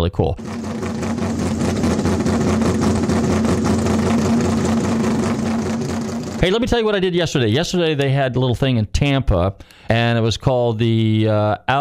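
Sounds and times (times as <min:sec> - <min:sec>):
speech: 0:00.0 - 0:00.7, 0:06.4 - 0:11.7
1966 Shelby car engine idling: 0:00.4 - 0:06.6.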